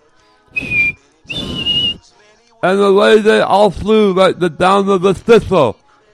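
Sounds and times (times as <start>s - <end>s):
person whistling high notes: 0.6s - 2.0s
speech: 2.6s - 5.8s.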